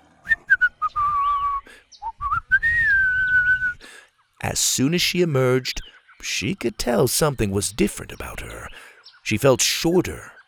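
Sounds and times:
person whistling a tune: 0.3 - 3.8
speech: 4.4 - 10.4.

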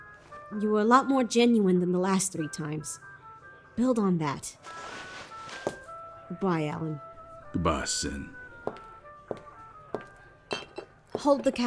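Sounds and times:
speech: 0.5 - 3.1, 3.8 - 5.0, 6.3 - 8.8, 11.2 - 11.6
dishes and glasses clinking while being washed: 10.5 - 11.6.

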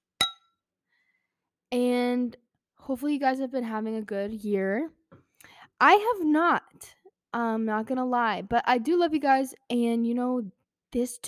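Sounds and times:
wine glasses clinking in a toast: 0.2 - 0.4
speech: 1.7 - 5.2, 5.8 - 11.2.

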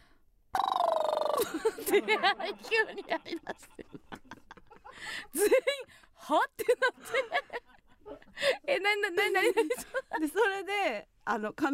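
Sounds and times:
voice doing a buzzing lip trill imitating a ringing phone: 0.5 - 1.4
laughter: 1.4 - 5.8, 6.6 - 8.5
speech: 1.5 - 11.7.

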